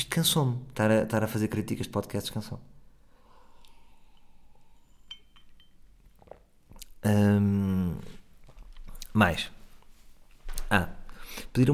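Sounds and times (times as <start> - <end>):
speech: 0.0 - 2.8, 7.0 - 8.2, 9.2 - 9.6, 10.7 - 11.0, 11.6 - 11.7
light clink of glass: 4.8 - 6.4
soft slurping and swallowing from a glass: 6.0 - 7.0.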